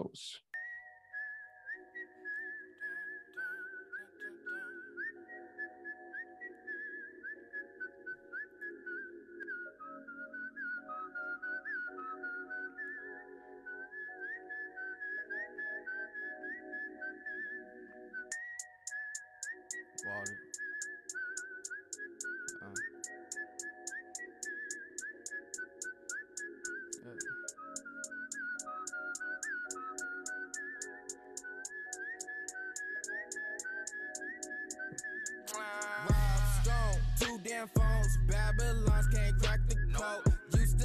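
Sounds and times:
speech: 0.0 - 0.4, 37.5 - 40.2
whistled melody: 0.5 - 40.8
backing chords and soft beat: 18.3 - 40.8.

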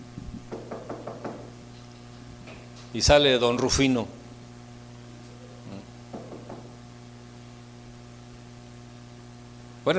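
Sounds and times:
low steady hum: 0.0 - 9.9
knocking on a door: 0.5 - 1.5, 6.1 - 6.7
speech: 2.9 - 4.2.

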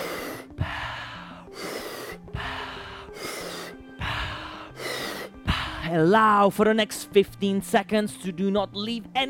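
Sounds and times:
rapid forceful breathing during a guided breathing exercise: 0.0 - 5.9
speech: 5.9 - 9.2.

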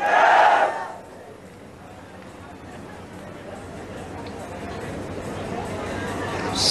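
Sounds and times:
large crowd shouting together: 0.0 - 1.0
steady murmur of many voices: 0.0 - 6.7.

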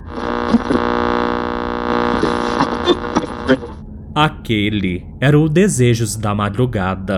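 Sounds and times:
brief crackles and clicks: 0.0 - 3.8
buzzing electrical interference hum on an FM radio broadcast: 0.0 - 4.5
speech: 0.1 - 1.3, 1.9 - 7.1.

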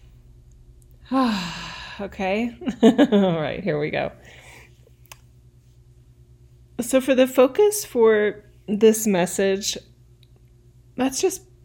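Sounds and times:
single deep breath let out as a voiced sigh: 1.0 - 2.0
speech: 1.1 - 4.4, 6.8 - 9.9, 11.0 - 11.5.

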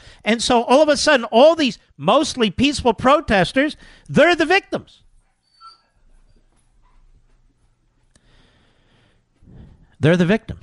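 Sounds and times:
speech: 0.2 - 5.0, 10.0 - 10.6
dog whimpering scared by thunder: 5.3 - 6.6.

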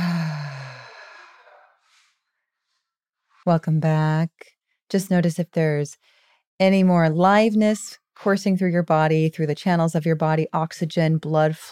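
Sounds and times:
deep breath slowly exhaled with a soft voiced sigh: 0.0 - 2.2
speech: 3.4 - 11.7.

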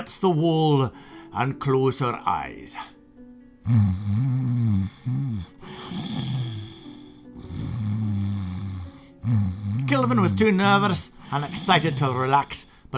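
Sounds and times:
speech: 0.0 - 3.0, 3.7 - 5.3, 9.3 - 12.9
person imitating snoring: 3.6 - 12.5.

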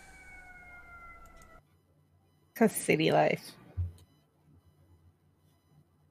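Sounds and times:
emergency vehicle siren: 0.0 - 1.7
speech: 2.6 - 3.6.

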